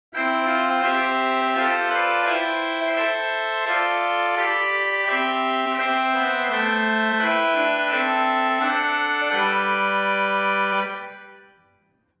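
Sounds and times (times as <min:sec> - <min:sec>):
Great Clarion 4 organ stop: 0:00.2 - 0:11.6.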